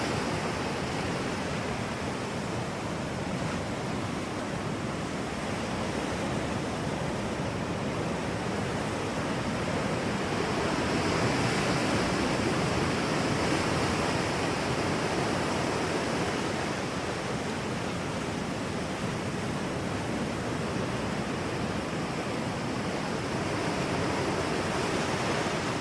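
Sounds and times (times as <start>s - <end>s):
rolling ocean waves roaring: 0.0s - 25.8s.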